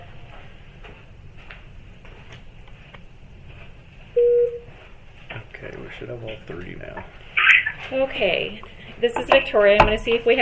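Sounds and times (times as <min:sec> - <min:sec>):
faint hissy phone-line hum: 0:00.0 - 0:00.9, 0:04.1 - 0:04.8
telephone call-connecting tone: 0:04.2 - 0:04.7
speech: 0:06.0 - 0:10.3.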